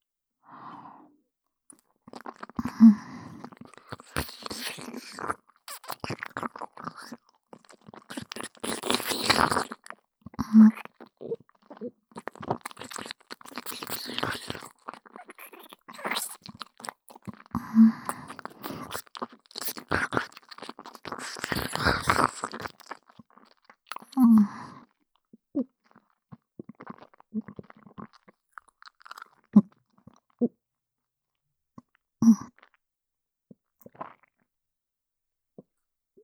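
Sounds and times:
person biting and chewing crunchy food: 0:01.7 - 0:24.9, 0:25.8 - 0:30.4.

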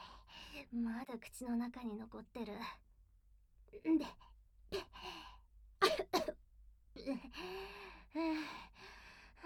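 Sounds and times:
speech: 0:00.6 - 0:02.8, 0:03.7 - 0:04.3, 0:07.0 - 0:08.7
person coughing after choking on something in the mouth: 0:05.8 - 0:06.3.

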